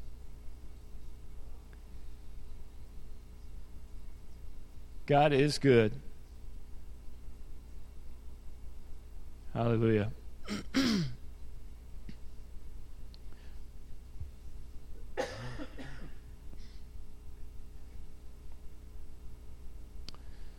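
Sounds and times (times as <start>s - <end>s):
faint low hum: 0.0s - 20.5s
speech: 5.1s - 6.1s, 9.6s - 10.9s
person coughing and clearing throat: 10.5s - 11.2s, 15.2s - 16.2s.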